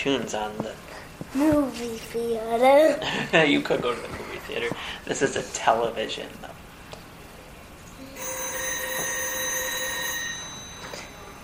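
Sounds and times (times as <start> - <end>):
speech: 0.0 - 6.6
telephone ringing with a bright buzzy electronic tone: 8.1 - 11.4.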